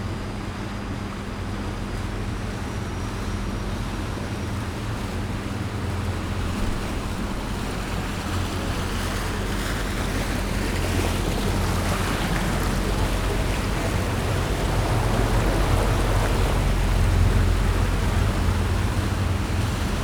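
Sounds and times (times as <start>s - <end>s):
boats on a lagoon in Venice Italy: 0.0s - 20.0s.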